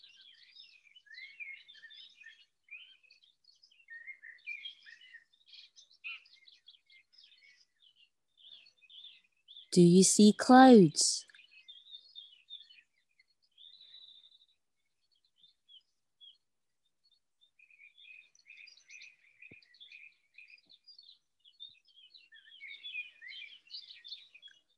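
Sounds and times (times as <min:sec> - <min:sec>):
several birds chirping and singing outdoors beneath overhanging trees: 0:00.0 - 0:09.7, 0:11.4 - 0:14.4, 0:17.6 - 0:24.7
speech: 0:09.8 - 0:11.3.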